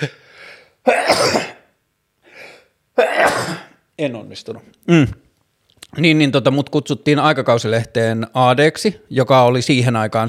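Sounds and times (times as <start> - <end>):
speech: 0.0 - 0.2, 0.8 - 1.5, 4.0 - 5.2, 5.9 - 10.2
loud sneezes: 0.8 - 1.7, 3.0 - 3.8.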